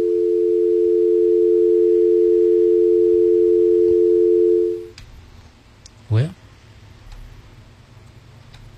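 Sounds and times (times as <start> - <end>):
telephone dial tone from dropped incoming call: 0.0 - 4.9.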